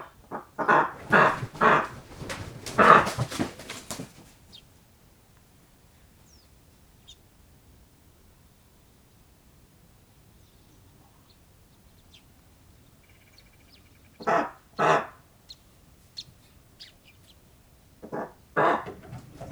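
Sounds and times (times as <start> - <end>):
eastern imperial eagle calling alone in nature: 0.6 - 4.0, 18.2 - 19.4.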